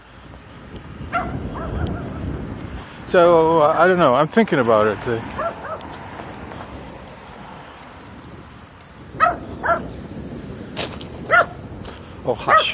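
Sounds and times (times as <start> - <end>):
loose dog running and barking: 1.1 - 2.2, 5.4 - 5.8, 9.2 - 9.9, 11.3 - 11.6, 12.5 - 12.7
speech: 3.1 - 5.5, 12.3 - 12.7.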